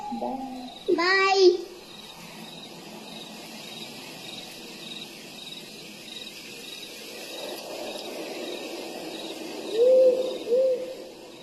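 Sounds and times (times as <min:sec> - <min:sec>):
owl hooting: 0:00.0 - 0:01.2, 0:07.4 - 0:11.4
faint steady cricket chirping at night: 0:00.0 - 0:11.4
speech: 0:00.1 - 0:01.6.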